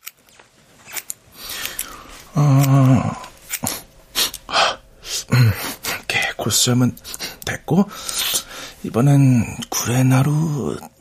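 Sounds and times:
small grooming scissors trimming whiskers: 0.0 - 1.9, 2.5 - 4.4
speech: 2.4 - 3.1, 6.6 - 8.2, 8.8 - 10.9.

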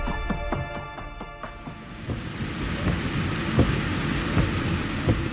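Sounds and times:
steady rain against a moving taxi heard from inside the cabin: 1.6 - 5.2.

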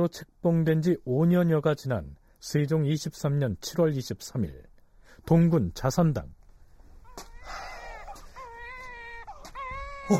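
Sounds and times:
speech: 0.0 - 6.4
newborn baby crying in wavering wails: 7.0 - 10.1.

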